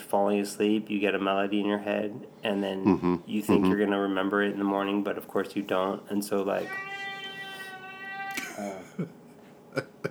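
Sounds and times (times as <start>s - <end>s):
speech: 0.1s - 6.9s, 8.6s - 9.2s
cat on a table meowing: 6.5s - 8.8s.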